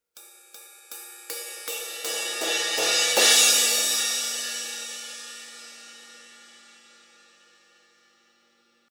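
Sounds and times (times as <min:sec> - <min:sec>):
crash ride cymbal crescendo hits: 0:00.2 - 0:07.9.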